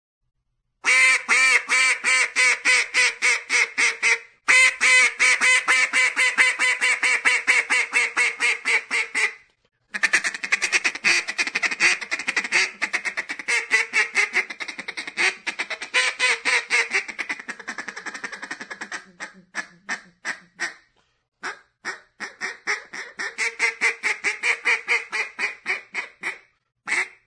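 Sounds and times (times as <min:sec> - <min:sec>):
duck: 0:00.8 - 0:27.2.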